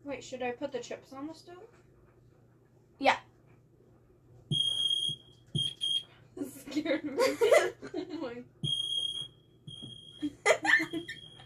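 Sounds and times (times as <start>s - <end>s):
speech: 0.2s - 1.9s, 3.0s - 3.3s, 6.8s - 8.6s
fire alarm blaring: 4.5s - 6.1s, 8.6s - 11.4s
laughter: 6.6s - 8.4s, 10.2s - 11.2s.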